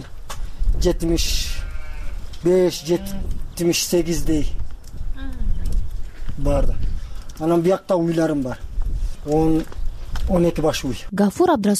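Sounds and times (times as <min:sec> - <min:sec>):
speech: 0:00.8 - 0:01.6, 0:02.4 - 0:04.6, 0:06.4 - 0:11.7
flock of small livestock bleating: 0:01.4 - 0:03.3.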